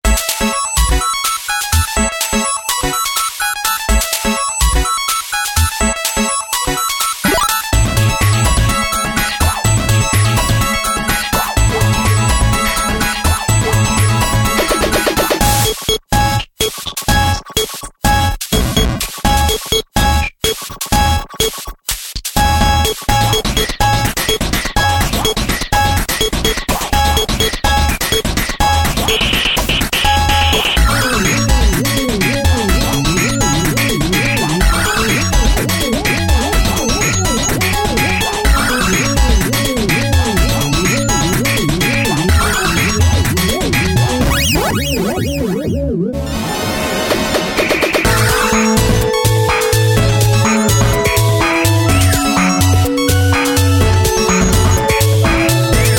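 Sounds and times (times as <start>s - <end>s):
8-bit chiptune music: 0.1s - 21.6s, 22.4s - 55.9s.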